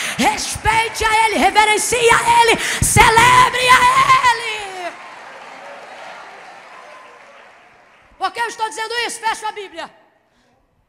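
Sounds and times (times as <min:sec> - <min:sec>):
audience clapping steadily: 0:00.0 - 0:02.5, 0:03.2 - 0:08.6
speech: 0:00.2 - 0:04.1, 0:08.4 - 0:10.0.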